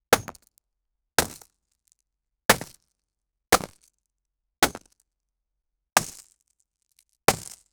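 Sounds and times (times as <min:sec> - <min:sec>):
pickaxe hitting raw stone: 0:00.1 - 0:00.5, 0:01.2 - 0:01.5, 0:02.5 - 0:02.8, 0:03.6 - 0:03.8, 0:04.6 - 0:04.9, 0:06.0 - 0:06.2, 0:07.3 - 0:07.6.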